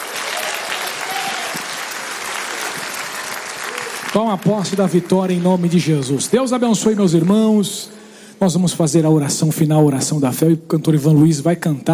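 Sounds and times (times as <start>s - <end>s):
church audience applauding: 0.0s - 7.6s
speech: 4.1s - 11.9s.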